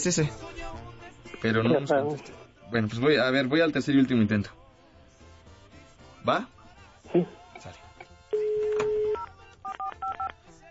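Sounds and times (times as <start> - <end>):
speech: 0.0 - 0.8, 1.4 - 4.6, 6.2 - 7.8
long steady telephone tone: 8.4 - 10.3.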